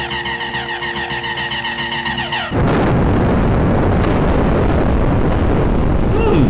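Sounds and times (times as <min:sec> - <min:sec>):
sci-fi ion cannon buzzing pulsing electronic charge-up whine: 0:00.0 - 0:06.0
sci-fi ion cannon broadside roaring blast: 0:02.4 - 0:06.4.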